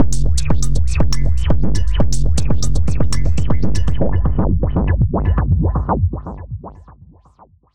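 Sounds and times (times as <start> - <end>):
techno beat at 120 bpm: 0.0 - 7.2.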